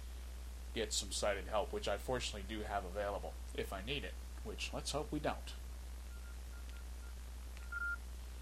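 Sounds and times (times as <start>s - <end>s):
low steady hum: 0.0s - 8.3s
speech: 0.7s - 5.6s
mobile phone keypad beeps entering unlock code: 7.6s - 8.0s.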